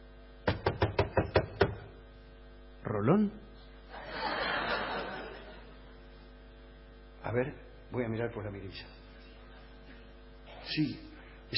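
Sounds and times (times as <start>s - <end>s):
knocking on a door: 0.5s - 1.9s
speech: 3.0s - 3.5s, 7.3s - 9.0s, 10.7s - 11.5s
laughter: 3.9s - 5.9s.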